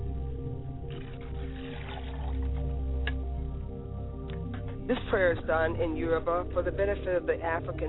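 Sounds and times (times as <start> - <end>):
continuous hum: 0.0 - 7.8
libation poured as part of a ritual prayer: 0.8 - 3.3
speech: 4.9 - 7.8.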